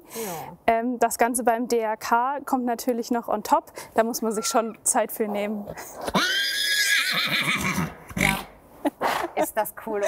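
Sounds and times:
speech: 0.2 - 8.4, 9.6 - 10.0
horse neighing: 4.3 - 4.8, 6.1 - 8.5
horse snorting: 5.7 - 9.4.

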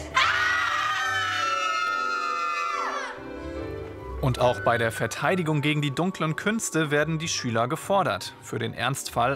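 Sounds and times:
several voices screaming into a potion: 0.2 - 3.2
speech: 4.3 - 9.3.

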